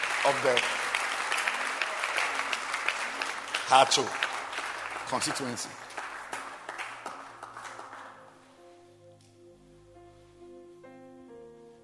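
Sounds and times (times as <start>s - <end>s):
audience at a gathering clapping hands: 0.0s - 8.4s
speech: 0.2s - 0.8s, 3.7s - 4.2s, 5.1s - 5.8s.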